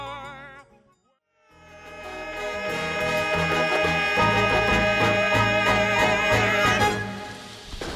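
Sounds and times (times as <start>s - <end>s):
song from a stage musical: 1.6s - 7.7s.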